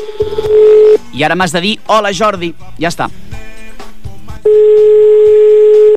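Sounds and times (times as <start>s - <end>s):
telephone line tone as a phone line is picked up: 0.0s - 1.0s, 4.4s - 5.9s
speech: 1.2s - 3.4s.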